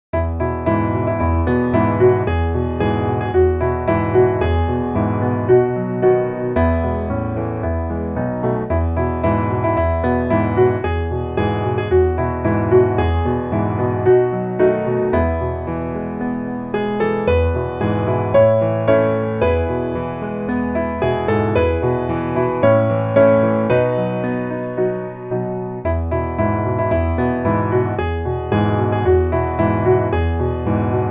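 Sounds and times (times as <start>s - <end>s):
piano piece: 0.1s - 31.0s.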